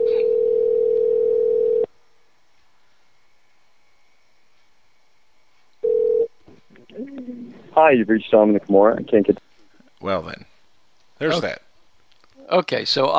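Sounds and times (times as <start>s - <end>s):
phone ringback tone on an outgoing call: 0.0s - 1.9s, 5.8s - 6.3s
speech: 7.8s - 9.4s, 10.0s - 10.5s, 11.2s - 11.6s, 12.5s - 13.1s.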